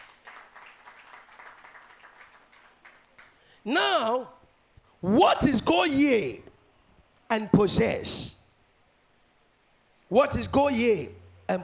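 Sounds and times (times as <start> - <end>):
church audience applauding during a sermon: 0.0 - 3.5
speech: 3.6 - 4.4, 5.0 - 6.4, 7.3 - 8.4, 10.1 - 11.6.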